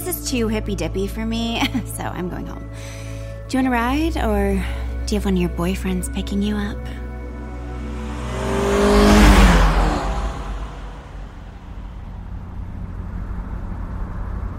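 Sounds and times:
speech: 0.1 - 7.0
new SUV engine revving and running: 5.5 - 14.5.

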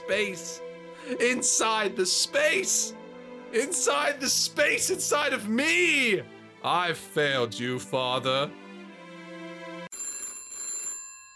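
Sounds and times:
speech: 0.1 - 8.6
telephone ringing for an incoming call: 9.9 - 11.3.

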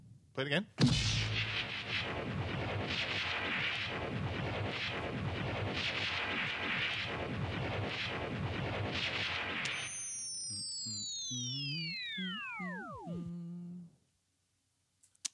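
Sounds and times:
sci-fi proton pack weapon firing crackle: 0.8 - 10.5
sci-fi proton pack powering down with descending electronic whine: 0.9 - 13.9.

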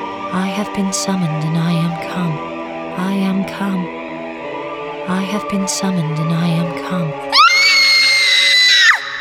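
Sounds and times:
speech: 0.3 - 4.0, 5.0 - 7.4
high-pitched scream like a young child's: 7.3 - 9.1.

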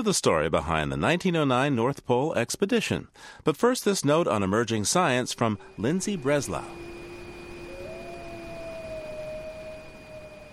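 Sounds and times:
speech: 0.0 - 7.0
wolf howling at night: 5.6 - 10.5.

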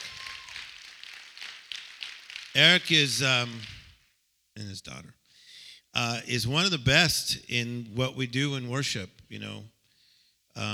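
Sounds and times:
crowd applauding: 0.0 - 4.0
speech: 2.6 - 3.7, 4.6 - 5.2, 6.0 - 9.8, 10.6 - 10.7.

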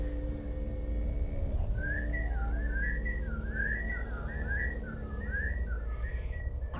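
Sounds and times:
low constant rumble: 0.0 - 6.7
eerie wavering whistle: 1.5 - 6.7.

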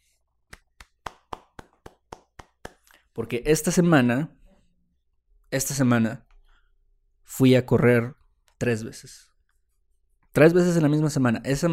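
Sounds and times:
sharp hand claps from a single person applauding alone: 0.4 - 3.0
speech: 3.2 - 4.4, 5.5 - 6.2, 7.3 - 9.3, 10.4 - 11.7.

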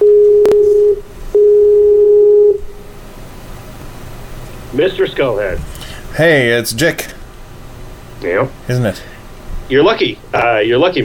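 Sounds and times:
electronic telephone ringing tone: 0.0 - 2.6
speech: 4.8 - 7.2, 8.2 - 9.1, 9.7 - 11.0.

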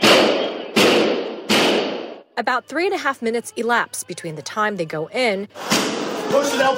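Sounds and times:
gunshots during a school shooting: 0.0 - 2.2
speech: 2.4 - 6.7.

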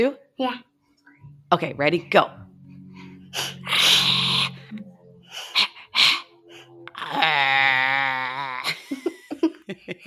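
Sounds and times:
speech: 0.0 - 0.7, 1.5 - 2.4
long drawn-out moaning bellow imitating bison: 1.1 - 8.8
two people vocally imitating bison with huffing snorts and grunts: 1.7 - 8.8
laughter: 8.5 - 10.0.

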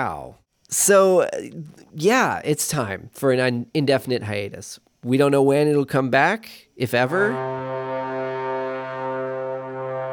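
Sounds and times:
speech: 0.0 - 7.7
tenor trombone long low blaring note: 7.2 - 10.1.

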